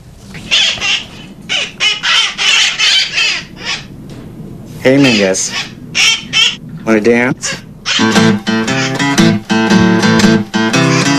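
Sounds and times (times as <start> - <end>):
wild San Francisco parrot squawking inside a house: 0.3 - 4.0, 4.8 - 6.6, 7.4 - 9.8, 10.6 - 11.1
speech: 4.8 - 5.8, 6.8 - 8.8.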